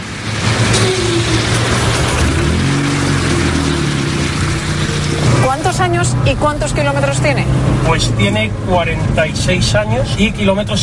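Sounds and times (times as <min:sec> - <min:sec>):
small Citroën 2CV car engine revving: 0:00.0 - 0:08.2
road and mechanical noise: 0:00.0 - 0:10.8
speech: 0:05.8 - 0:10.8.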